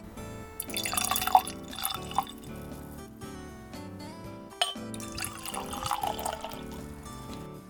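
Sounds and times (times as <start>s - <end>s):
lightly fizzy cloudy Japanese sake poured into glasses: 0.1s - 3.1s, 4.6s - 7.5s
liquid dripping: 0.1s - 3.1s, 4.6s - 7.5s
glasses clinking: 0.6s - 2.9s, 4.6s - 7.5s.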